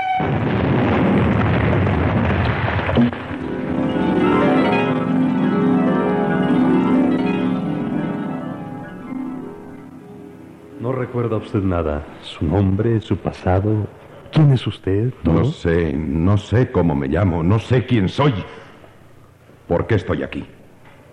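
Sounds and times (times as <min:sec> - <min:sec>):
bomb exploding during a bombardment of muddy trenches: 0:00.2 - 0:05.3
steady tone: 0:03.0 - 0:11.5
speech: 0:11.3 - 0:18.6, 0:19.7 - 0:20.6.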